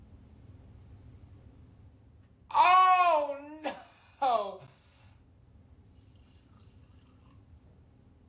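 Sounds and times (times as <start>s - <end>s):
low rumble: 0.0s - 8.2s
carbonated Everclear being poured: 5.9s - 7.6s
faint splashing of poured carbonated Everclear: 5.9s - 7.6s.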